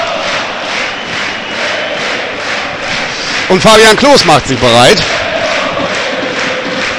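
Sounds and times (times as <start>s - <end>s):
packed football stadium crowd roaring: 0.0s - 6.9s
football commentator speaking: 3.5s - 5.1s
speech: 3.5s - 5.2s.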